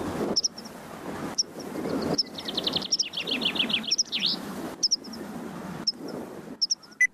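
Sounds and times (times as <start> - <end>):
steady wind or field noise: 0.0 - 7.1
thin high meadow pipit calls: 0.3 - 0.8, 1.4 - 5.2, 6.6 - 7.1.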